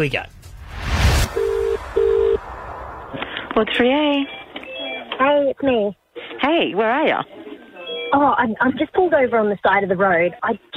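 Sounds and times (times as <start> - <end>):
speech: 0.0 - 0.4, 3.6 - 4.4, 5.2 - 7.4, 8.1 - 10.7
whoosh of hiss: 0.3 - 4.5
quiet telephone line noise: 0.8 - 5.8.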